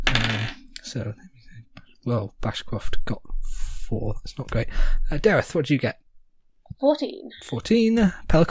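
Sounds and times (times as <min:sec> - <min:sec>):
twenty-sided dice clattering across a hard tabletop: 0:00.0 - 0:00.6
speech: 0:00.9 - 0:01.4, 0:02.0 - 0:06.0, 0:06.8 - 0:08.4.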